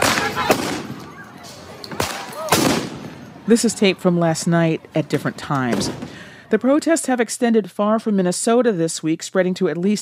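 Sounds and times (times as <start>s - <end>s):
police firing tear gas at protesters: 0.0s - 1.0s, 1.9s - 3.2s
speech: 3.5s - 10.0s.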